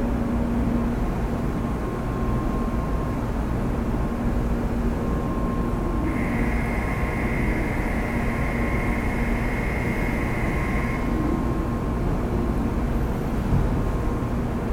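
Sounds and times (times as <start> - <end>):
bullet train idling or moving slowly at a station platform: 0.0 - 14.7
constant thin hum: 6.0 - 11.6.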